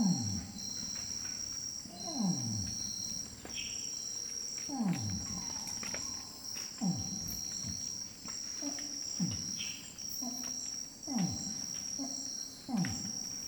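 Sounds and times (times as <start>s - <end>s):
shrill insect chorus: 0.0s - 13.4s
orangutan long call: 1.9s - 2.7s, 4.7s - 7.6s, 10.2s - 13.3s.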